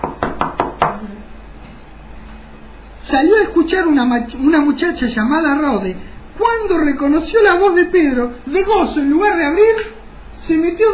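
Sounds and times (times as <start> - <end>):
knocking on a courtyard door: 0.0 - 1.0
speech: 3.1 - 10.9.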